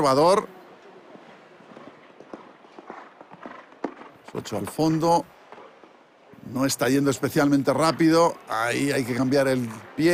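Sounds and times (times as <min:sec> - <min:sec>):
speech: 0:00.0 - 0:00.6, 0:04.3 - 0:05.4, 0:06.5 - 0:10.1
horse hooves clip-clopping on the ground during show jumping: 0:00.7 - 0:06.1.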